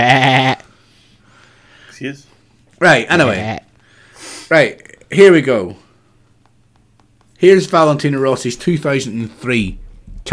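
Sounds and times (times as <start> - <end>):
speech: 0.0 - 0.6, 2.0 - 3.6, 4.5 - 5.8, 7.4 - 10.3
sheep bleating: 0.0 - 0.7, 3.2 - 3.7.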